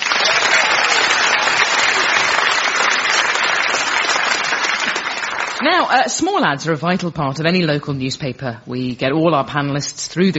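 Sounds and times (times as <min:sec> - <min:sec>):
audience applause: 0:00.0 - 0:05.9
speech: 0:05.6 - 0:10.3.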